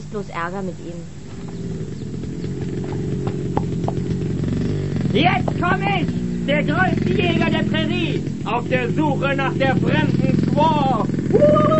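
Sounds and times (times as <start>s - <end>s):
continuous low droning rumble: 0.0s - 11.7s
speech: 0.1s - 1.2s, 5.2s - 11.7s
two horses' hooves clip-clopping at a walking pace on a sand track: 1.2s - 5.7s.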